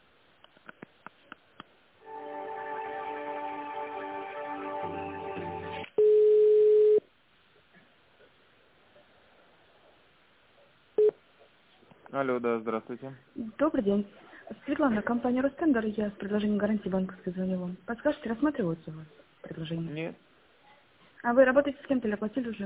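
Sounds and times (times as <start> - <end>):
phone line beeps: 6.0 - 7.0
speech: 12.2 - 20.3, 21.2 - 22.6.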